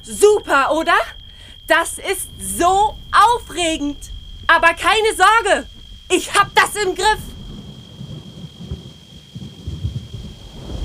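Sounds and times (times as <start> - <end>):
speech: 0.0 - 7.3
steady rain hiss: 0.0 - 10.8
rolling thunder in a storm at a mountain pass: 2.3 - 10.8.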